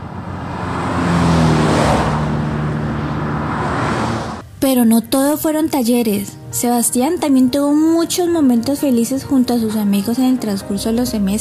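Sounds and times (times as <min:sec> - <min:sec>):
cars driving past on a road: 0:00.0 - 0:04.6
speech: 0:04.6 - 0:11.3.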